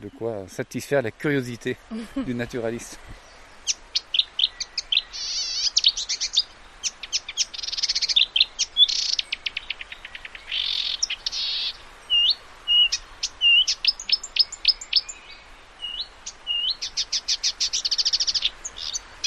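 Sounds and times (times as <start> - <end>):
speech: 0.0 - 3.8
song thrush singing: 0.0 - 19.2.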